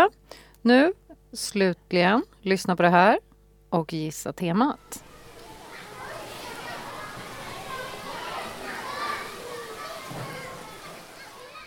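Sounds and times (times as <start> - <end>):
speech: 0.0 - 5.1
children playing: 4.8 - 11.6
overlapping kids' voices, shouts and chatter: 4.8 - 11.6.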